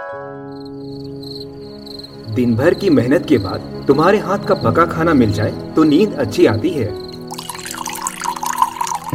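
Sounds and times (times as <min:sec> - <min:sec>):
speech: 0:02.3 - 0:07.1
water pouring into a glass: 0:07.1 - 0:09.1.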